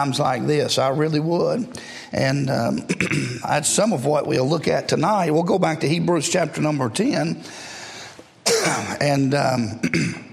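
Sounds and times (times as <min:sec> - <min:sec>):
speech: 0:00.0 - 0:07.7, 0:08.6 - 0:10.2
dry harsh rasping cough: 0:02.9 - 0:03.5, 0:08.4 - 0:09.0, 0:09.8 - 0:10.3.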